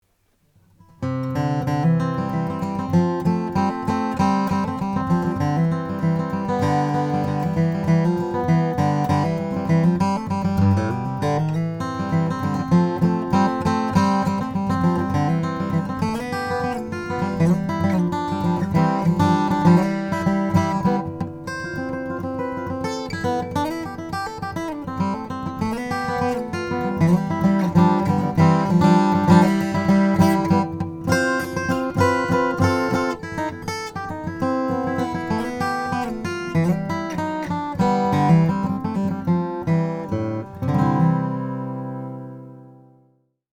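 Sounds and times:
Martin D-18 custom shop mahogany acoustic guitar: 0.0s - 43.4s.

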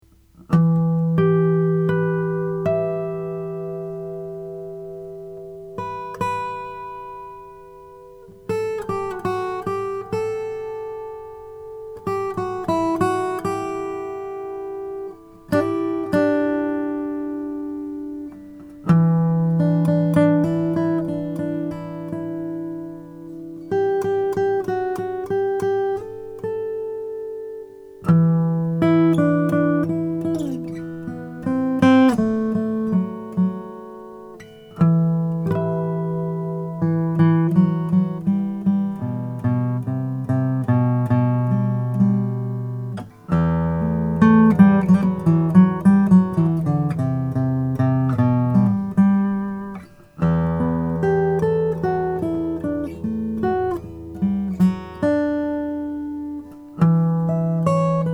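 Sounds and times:
deluxe custom acoustic guitar of golden mahogany: 0.0s - 58.1s.

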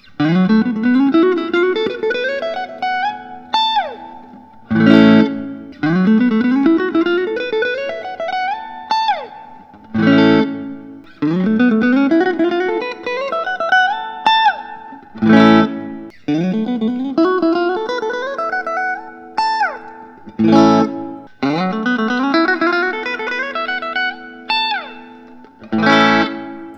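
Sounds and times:
Fender USA American Vintage electric guitar: 0.0s - 26.7s.

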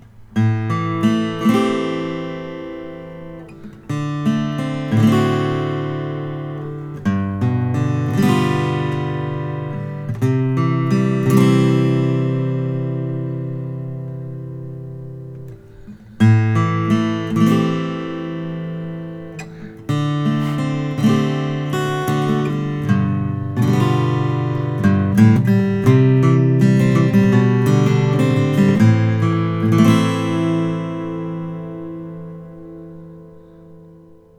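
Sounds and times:
koa acoustic guitar: 0.0s - 34.3s.

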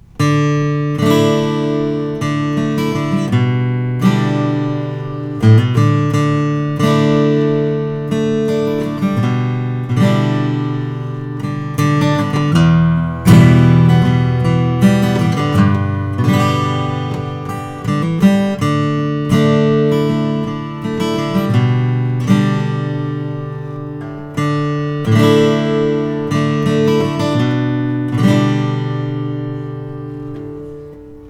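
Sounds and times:
rosewood acoustic guitar: 0.0s - 31.2s.

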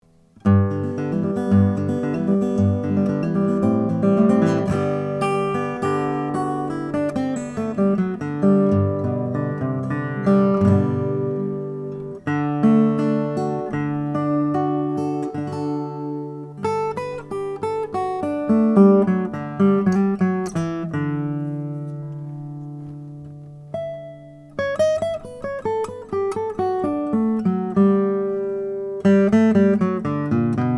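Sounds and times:
Martin 00-18 mahogany guitar: 0.0s - 30.7s.

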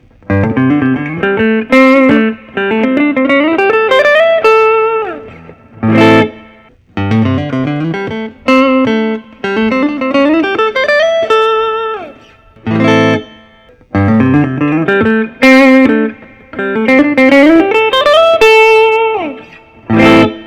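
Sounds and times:
PRS Private Stock Custom 22 Mocha guitar: 0.0s - 20.4s.

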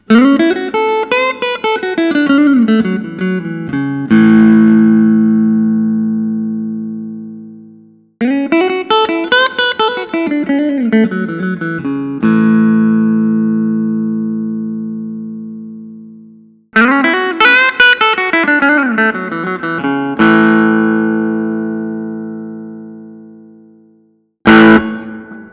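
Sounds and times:
Collings 290 guitar: 0.0s - 25.5s.

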